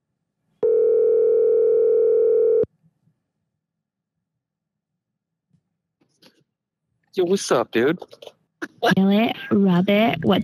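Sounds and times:
telephone ringing-out tone as a phone call is placed: 0:00.6 - 0:02.7
speech: 0:07.2 - 0:10.4.

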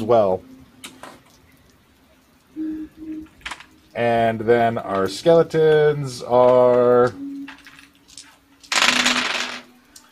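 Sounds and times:
speech: 0:00.0 - 0:00.5, 0:04.0 - 0:07.3
faint noise: 0:00.0 - 0:10.1
dice tumbling across a hard tabletop: 0:08.7 - 0:09.7.

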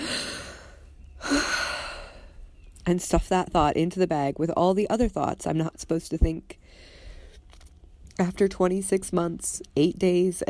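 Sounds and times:
deep breath: 0:00.0 - 0:02.4, 0:06.6 - 0:07.4
speech: 0:02.9 - 0:06.9, 0:08.2 - 0:10.4.

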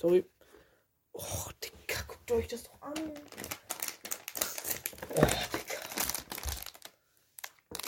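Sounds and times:
speech: 0:00.0 - 0:00.4, 0:01.2 - 0:03.5
plastic packaging crinkling while unboxing a wired keyboard: 0:02.9 - 0:07.8.

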